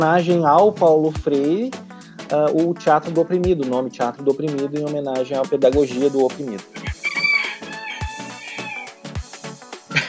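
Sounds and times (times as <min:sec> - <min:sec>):
speech: 0:00.0 - 0:06.8
rooster crowing: 0:06.7 - 0:09.0.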